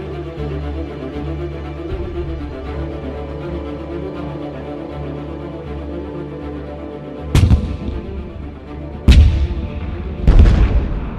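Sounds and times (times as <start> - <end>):
cannon blasts: 7.4 - 8.2, 9.1 - 11.1.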